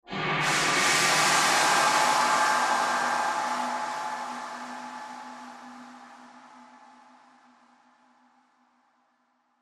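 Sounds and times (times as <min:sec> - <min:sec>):
airy metallic horror swell: 0:00.1 - 0:07.2.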